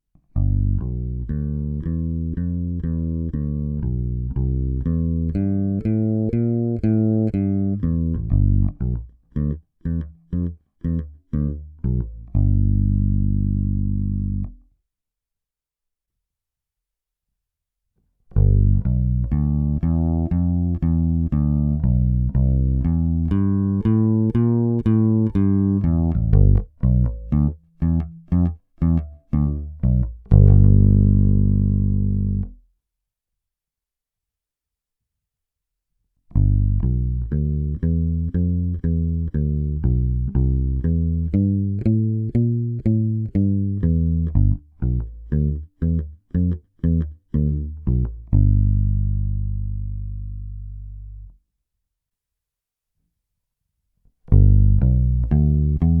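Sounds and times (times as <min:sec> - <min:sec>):
Cort B4FL fretless bass guitar clean tone with Bartolini MK1 pickups and flatwound strings: 0:00.3 - 0:14.7, 0:18.3 - 0:32.6, 0:36.3 - 0:51.4, 0:54.2 - 0:55.9.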